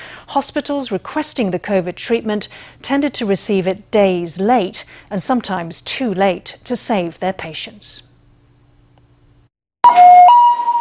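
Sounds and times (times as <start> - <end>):
speech: 0.4 - 8.1
ambulance siren passing: 9.8 - 10.7.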